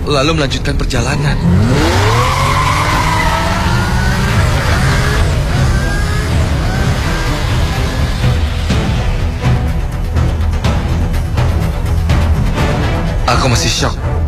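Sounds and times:
speech: 0:00.1 - 0:02.1, 0:13.4 - 0:14.1
car tires squealing while accelerating: 0:00.9 - 0:09.2
car engine roaring while accelerating hard: 0:00.9 - 0:12.3.

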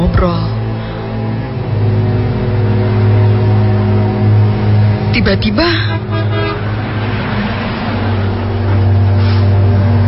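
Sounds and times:
approaching car engine and road noise: 0:00.0 - 0:10.0
speech: 0:00.1 - 0:00.6, 0:05.2 - 0:06.0
car horn honking: 0:05.7 - 0:07.0.

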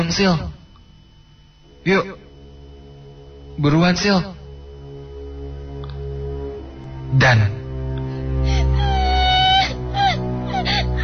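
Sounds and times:
speech: 0:00.0 - 0:00.5, 0:01.8 - 0:02.2, 0:03.6 - 0:04.4, 0:07.1 - 0:07.6
steady low hum: 0:00.0 - 0:11.0
person crying in drawn-out wavering wails and whimpers: 0:08.5 - 0:11.0.

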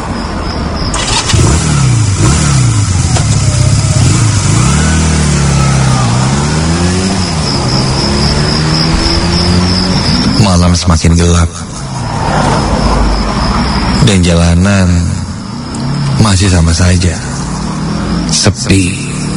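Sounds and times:
car engine droning through a forest at night: 0:00.0 - 0:19.3
speech: 0:11.0 - 0:11.6, 0:14.1 - 0:15.1, 0:16.2 - 0:17.3, 0:18.3 - 0:19.1.

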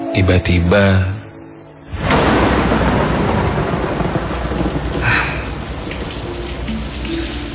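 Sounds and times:
speech: 0:00.2 - 0:01.2
heavy rain: 0:01.9 - 0:07.5
rolling thunder: 0:01.9 - 0:07.5.

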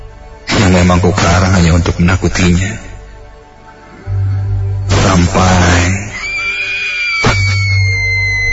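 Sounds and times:
speech: 0:00.8 - 0:02.9, 0:05.1 - 0:06.0
girl screaming from outside the room: 0:06.1 - 0:08.5.

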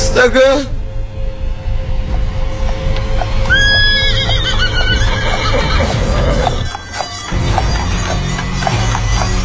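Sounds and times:
speech: 0:00.2 - 0:00.8
horse hooves galloping: 0:02.1 - 0:09.4
horse neighing in a drawn-out wavering whinny: 0:03.2 - 0:06.8.

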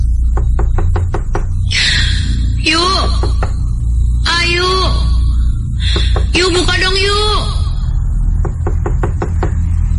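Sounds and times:
steady low hum: 0:00.0 - 0:09.9
knocking on a neighbouring room door in a boarding house: 0:00.3 - 0:01.6, 0:03.0 - 0:03.6, 0:08.4 - 0:09.6
speech: 0:06.4 - 0:07.6.

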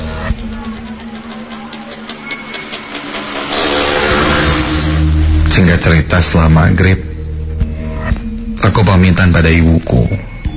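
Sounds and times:
motorcycle engine revving as rider accelerates: 0:00.0 - 0:05.6
speech: 0:05.6 - 0:07.1, 0:08.6 - 0:10.3.

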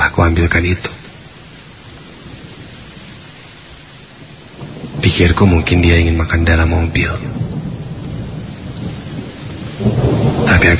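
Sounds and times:
heavy rain: 0:00.0 - 0:10.7
thunder rumbling: 0:00.0 - 0:10.7
speech: 0:00.2 - 0:01.0, 0:05.1 - 0:07.4, 0:10.6 - 0:10.7.

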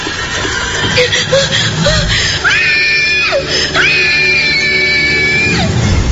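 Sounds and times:
laughter: 0:00.0 - 0:04.0
person screaming in fright: 0:02.0 - 0:05.8.

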